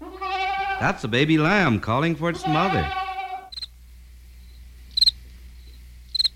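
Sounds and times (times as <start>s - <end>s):
speech: 0.8s - 3.0s
cricket chirping in shrill pulsing trills: 3.5s - 3.8s, 4.4s - 6.3s.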